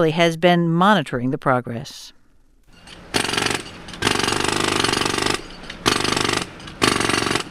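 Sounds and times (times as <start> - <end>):
speech: 0.0 - 2.2
jackhammers pounding during street reconstruction on Wacker Drive in Chicago: 2.8 - 7.5.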